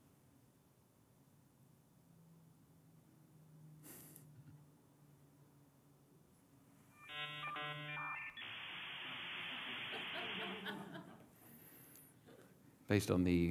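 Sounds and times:
dial-up internet modem handshake dial and answer tones: 0:07.0 - 0:08.4
dial-up modem sustained screeching static hiss: 0:07.0 - 0:11.0
faint scattered laughter: 0:09.6 - 0:11.4
speech: 0:12.9 - 0:13.4.

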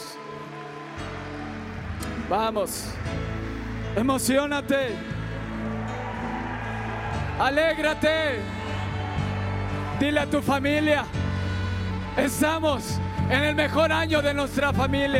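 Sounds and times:
congregation clapping loudly: 0:00.0 - 0:10.6
speech: 0:02.3 - 0:03.2, 0:04.0 - 0:05.1, 0:07.4 - 0:08.6, 0:10.0 - 0:11.2, 0:12.2 - 0:15.1.

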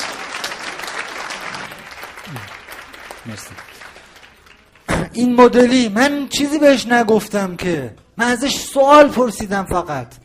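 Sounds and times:
crowd applauding with many hands clapping: 0:00.0 - 0:04.9
speech: 0:02.3 - 0:02.6, 0:03.2 - 0:03.8, 0:05.2 - 0:10.2.

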